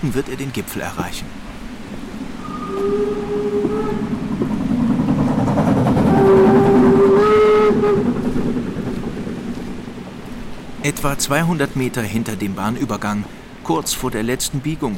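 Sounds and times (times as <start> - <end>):
speech: 0.0 - 1.6, 2.8 - 3.4, 10.8 - 14.9
steam train rumbling past: 1.9 - 12.4
steam train whistle blasts: 2.4 - 4.1, 6.1 - 8.2.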